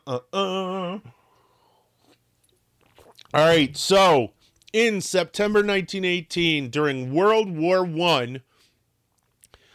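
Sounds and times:
speech: 0.1s - 1.2s, 3.3s - 8.5s
person slurping while sipping coffee: 1.3s - 3.7s.

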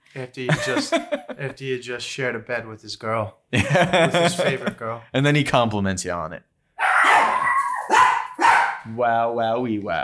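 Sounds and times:
speech: 0.2s - 6.5s, 8.9s - 10.0s
laughter: 0.4s - 1.6s, 3.6s - 5.0s
dogs barking and howling: 6.8s - 8.9s.

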